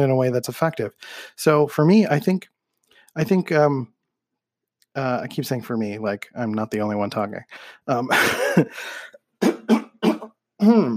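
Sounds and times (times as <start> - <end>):
speech: 0.0 - 2.5, 3.2 - 3.9, 5.0 - 9.8, 10.6 - 10.9
man clearing his throat: 8.1 - 8.8, 9.4 - 10.9
man coughing: 8.1 - 10.9.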